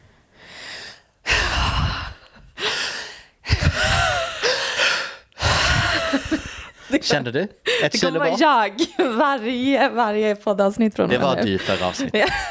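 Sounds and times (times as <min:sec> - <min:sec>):
exaggerated heavy huffing breaths: 0:00.4 - 0:06.9
speech: 0:07.0 - 0:12.4.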